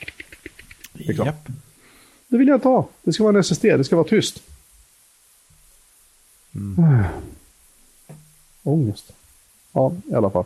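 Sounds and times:
voice mimicking the spinning hard disk of a 2014 Mac Mini: 0.0 - 1.5
speech: 1.0 - 1.6, 2.3 - 4.5, 6.7 - 7.3, 8.6 - 9.2, 9.8 - 10.4.

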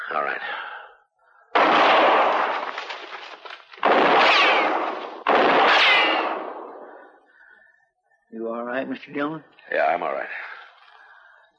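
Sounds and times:
speech: 0.1 - 0.7, 8.4 - 10.5
gunshots fired toward someone hiding in brush: 1.6 - 7.2.

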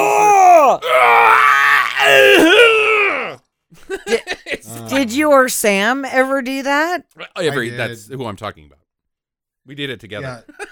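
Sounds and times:
voice imitating strained grunting and yelling of men lifting weights: 0.0 - 3.4
laughter: 3.7 - 5.1, 10.3 - 10.7
speech: 5.0 - 8.8, 9.6 - 10.7.

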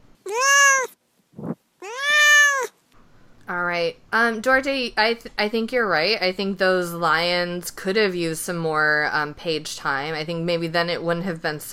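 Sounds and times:
pet cat meowing: 0.3 - 1.0, 1.8 - 2.7
speech: 3.8 - 11.7.

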